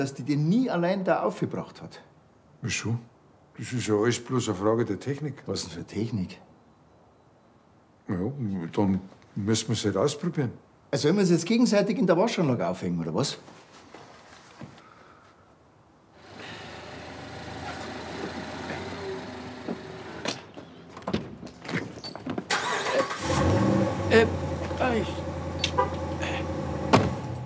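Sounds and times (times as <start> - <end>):
speech: 0.0 - 6.5, 8.1 - 13.6
new car engine starting and idling: 16.2 - 20.6, 22.5 - 27.4.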